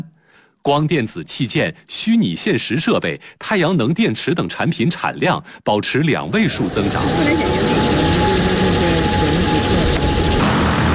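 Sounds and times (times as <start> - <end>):
speech: 0.0 - 7.8
fixed-wing cargo drone engine and propeller roar during takeoff in Putuo District Zhoushan China: 6.4 - 10.9.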